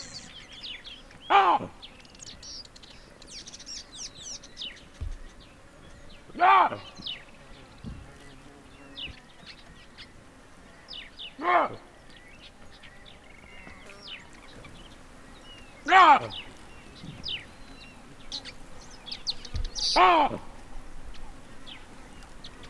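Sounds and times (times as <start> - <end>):
Papio cynocephalus ursinus group barking alarm calls while mobbing a researcher: 1.3 - 1.8, 6.4 - 7.0, 11.4 - 11.9, 14.4 - 22.6.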